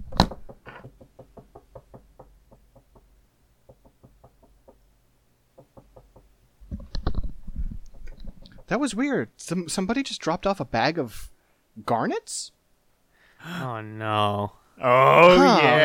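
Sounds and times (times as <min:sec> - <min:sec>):
rapid light knocking on a door: 0:00.2 - 0:04.8, 0:05.6 - 0:06.3
speech: 0:08.7 - 0:12.6, 0:13.4 - 0:15.8.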